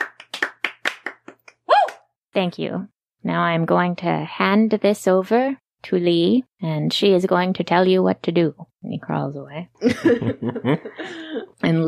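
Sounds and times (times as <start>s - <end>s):
small group clapping: 0.0s - 2.0s
speech: 2.4s - 11.8s
laughter: 9.8s - 11.5s.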